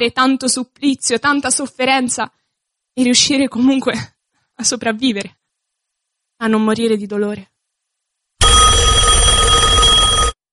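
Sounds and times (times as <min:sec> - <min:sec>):
speech: 0:00.0 - 0:02.4, 0:03.0 - 0:05.4, 0:06.4 - 0:07.5
telephone bell ringing: 0:08.4 - 0:10.4.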